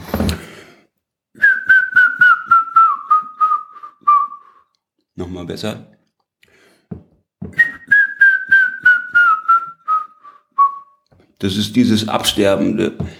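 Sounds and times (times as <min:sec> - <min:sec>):
person whistling an imitation of a grey-headed woodpecker call: 0:01.4 - 0:04.6, 0:07.6 - 0:11.0
speech: 0:05.3 - 0:06.0, 0:11.4 - 0:13.1.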